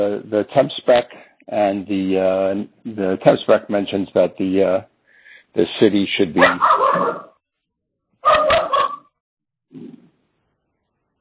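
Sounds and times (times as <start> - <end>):
speech: 0.0 - 4.9, 5.5 - 7.3, 9.7 - 10.0
dog barking: 6.4 - 7.3, 8.2 - 9.0.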